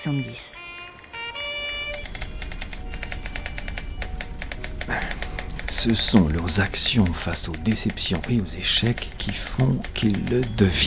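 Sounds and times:
speech: 0.0 - 0.6, 5.8 - 10.8
faint hum: 0.2 - 10.8
steady tone: 1.6 - 8.3
typewriter keys clacking in barracks housing at Fort Bragg North Carolina: 1.9 - 10.8.

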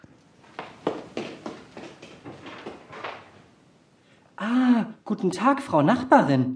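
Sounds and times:
footsteps thudding: 0.4 - 3.5
speech: 4.4 - 6.5.

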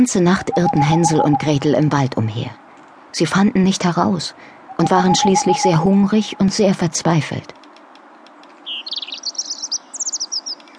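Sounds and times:
speech: 0.0 - 7.6
bird singing: 0.3 - 1.8, 4.7 - 6.7, 8.6 - 10.7.

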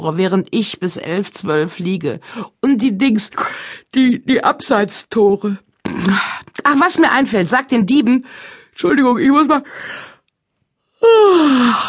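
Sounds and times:
speech: 0.0 - 10.1, 11.0 - 11.8
person yawning: 11.0 - 11.8.

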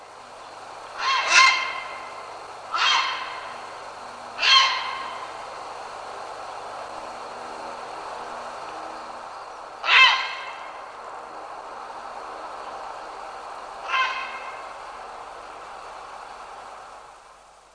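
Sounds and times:
grey heron uttering harsh hoarse croaks: 0.8 - 5.5, 9.6 - 10.9, 13.8 - 15.0.

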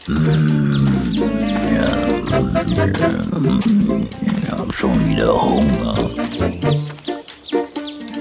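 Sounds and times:
large brown bear growling: 0.0 - 6.3
speech: 0.1 - 7.0.

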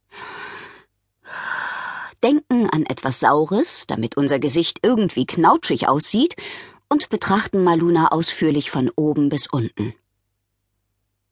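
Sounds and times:
deep breath in and out: 0.1 - 2.2, 6.4 - 6.8
speech: 2.2 - 10.0.

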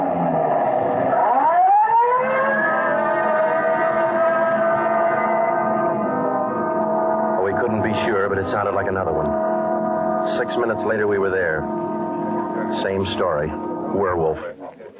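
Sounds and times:
police car siren wailing: 0.0 - 14.3
speech: 8.6 - 9.5, 10.3 - 11.9, 12.7 - 14.8.

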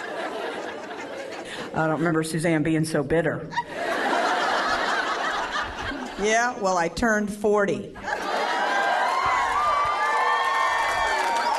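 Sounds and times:
laughter: 0.0 - 2.1, 3.5 - 6.2, 8.0 - 9.9
speech: 1.7 - 3.8, 6.2 - 8.1
audience cheering and whoops: 8.3 - 11.5
audience applauding: 8.4 - 11.5.

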